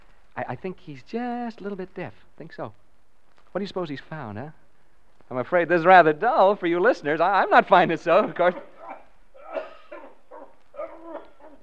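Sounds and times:
speech: 0.4 - 2.8, 3.6 - 4.6, 5.3 - 8.7
man coughing in distance: 8.2 - 11.6.

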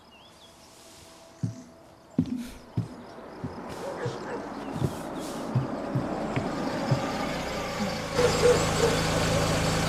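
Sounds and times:
road noise: 0.4 - 9.8
dull knocks and thumps: 1.4 - 7.5
car engine rumble driving up to a house: 3.5 - 9.8.

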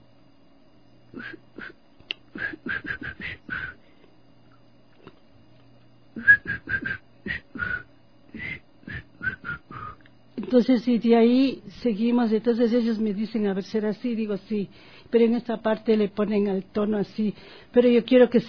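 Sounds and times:
speech: 1.2 - 3.4, 10.5 - 18.4
person whistling a tune: 2.4 - 3.8, 6.2 - 10.0.

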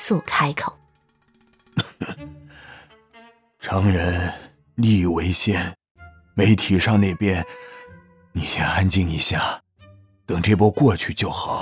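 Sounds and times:
speech: 0.0 - 0.8, 3.6 - 5.8, 6.4 - 7.8, 8.4 - 9.6, 10.3 - 11.6
old man coughing: 1.8 - 2.2.

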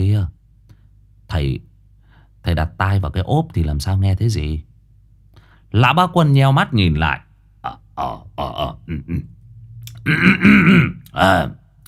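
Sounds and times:
speech: 1.3 - 1.7, 2.4 - 4.7, 5.7 - 9.4, 10.0 - 11.6
old man clearing his throat: 7.7 - 9.3, 9.9 - 11.2.

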